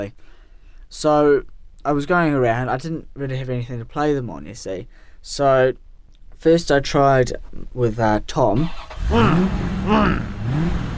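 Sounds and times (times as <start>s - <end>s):
speech: 0.0s - 5.8s, 6.4s - 10.9s
car engine failing to start: 8.6s - 10.9s.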